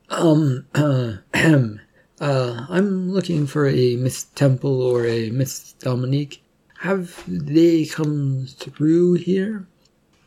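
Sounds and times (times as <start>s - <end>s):
man clearing his throat: 0.1s - 1.8s
speech: 0.2s - 9.7s.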